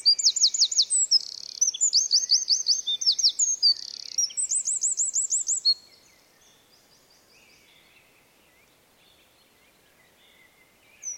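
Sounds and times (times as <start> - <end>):
Eurasian wren Troglodytes troglodytes singing: 0.0 - 5.9.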